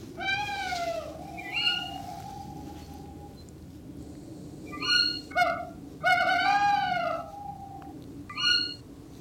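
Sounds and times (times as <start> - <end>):
male tawny owl wavering low hoot played from a phone: 0.2 - 3.4, 4.7 - 8.8.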